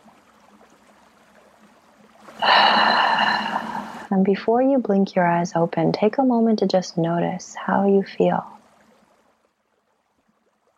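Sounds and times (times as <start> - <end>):
long deep inhale during a guided meditation: 2.4 - 4.1
speech: 4.2 - 8.6.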